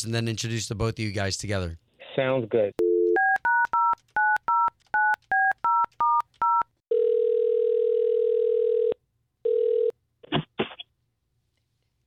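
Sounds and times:
speech: 0:00.0 - 0:02.8
telephone ringing tone: 0:02.8 - 0:09.9.

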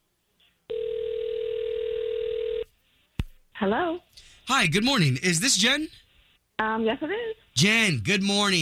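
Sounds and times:
phone ringback tone: 0:00.7 - 0:02.7
speech: 0:03.6 - 0:08.6.

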